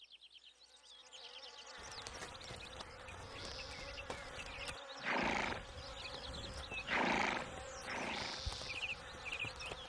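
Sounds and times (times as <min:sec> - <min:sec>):
insects buzzing: 0:01.4 - 0:09.8
old horse shod with steel horseshoes snorting on a meadow: 0:04.2 - 0:09.8.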